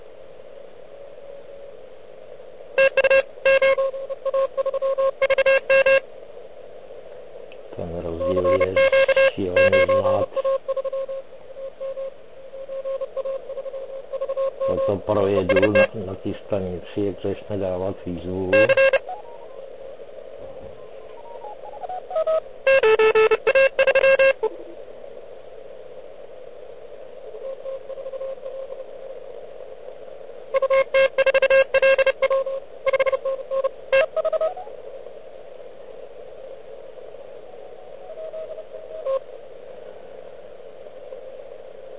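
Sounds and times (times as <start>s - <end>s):
radio receiver hissing with heavy interference: 0.0s - 41.9s
droning tone: 0.7s - 6.1s, 7.5s - 41.9s
stuttering beeps and chirps: 2.8s - 6.0s, 8.2s - 12.1s, 12.7s - 15.9s, 18.5s - 19.2s, 21.1s - 24.4s
speech: 15.7s - 19.0s.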